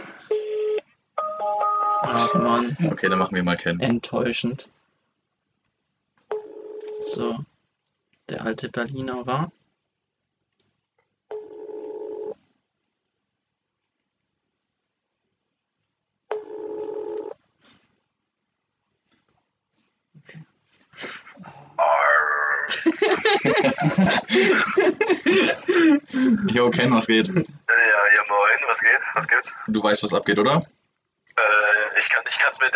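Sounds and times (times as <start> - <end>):
mobile phone on loudspeaker outgoing call ringback tone: 0.3 - 2.7, 6.3 - 7.1, 11.3 - 12.4, 16.3 - 17.4
speech: 2.0 - 4.8, 7.1 - 7.5, 8.3 - 9.6, 23.4 - 32.7
laughter: 22.7 - 27.5.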